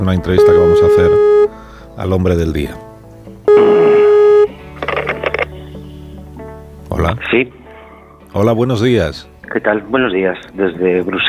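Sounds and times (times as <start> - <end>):
speech: 0.0 - 1.3, 2.0 - 2.9, 3.6 - 4.0, 7.0 - 7.6, 8.3 - 11.2
telephone line tone on an international call: 0.4 - 1.5, 3.5 - 4.5.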